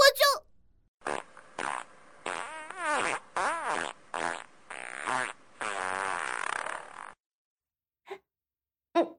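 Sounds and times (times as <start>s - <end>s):
wet sputtering farts: 1.0s - 7.2s.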